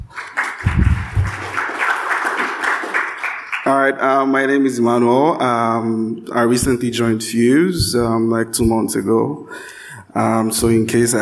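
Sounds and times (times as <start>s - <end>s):
audience applause for event organizers: 0.0s - 3.8s
speech: 3.9s - 11.2s
low thump: 6.6s - 6.9s, 7.8s - 8.8s.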